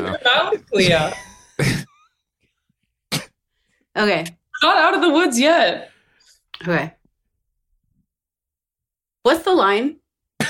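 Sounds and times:
speech: 0.2 - 1.2, 4.0 - 5.9, 6.6 - 7.0, 9.2 - 10.4
harsh coughing: 1.6 - 2.1, 3.1 - 3.4.

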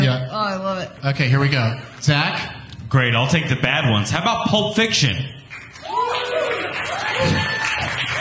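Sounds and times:
speech: 0.1 - 5.4
audience clapping: 5.4 - 8.1
scattered whoops and cheering voices: 5.8 - 8.1.

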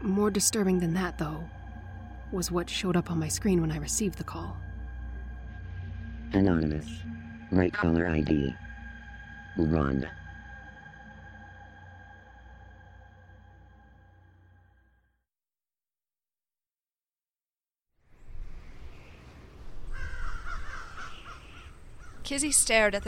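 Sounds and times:
speech: 0.0 - 1.6, 2.3 - 4.7, 6.3 - 8.6, 9.6 - 10.2, 22.3 - 23.0
steady droning tone: 0.0 - 14.8
crows cawing: 19.8 - 22.8.

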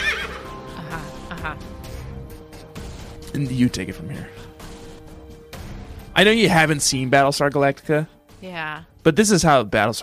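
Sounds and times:
horse whinnying loudly and shrilly: 0.0 - 0.6
speech: 1.4 - 1.9, 3.3 - 4.4, 6.2 - 10.0.

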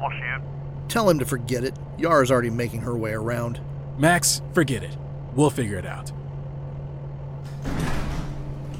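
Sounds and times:
speech: 0.0 - 6.2
large mechanical bay door rising open: 7.4 - 8.7.

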